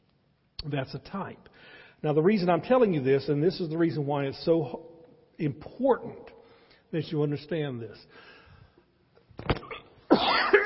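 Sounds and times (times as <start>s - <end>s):
speech: 0.6s - 6.3s, 6.9s - 8.3s, 9.4s - 9.6s
person coughing: 9.5s - 10.6s.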